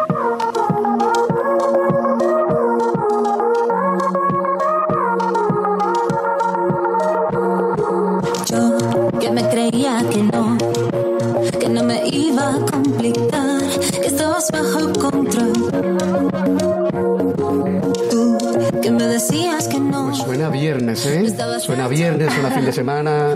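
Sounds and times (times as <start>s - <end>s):
mellow electronic chill-out track with jazzy touches: 0.0s - 23.3s
laughter: 22.0s - 23.3s.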